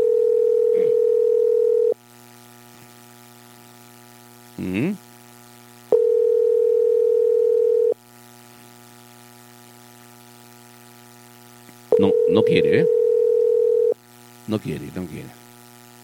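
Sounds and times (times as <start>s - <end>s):
telephone ringback tone while calling someone: 0.0s - 2.0s, 5.9s - 8.0s, 11.9s - 14.0s
speech: 12.4s - 13.0s, 14.5s - 15.4s.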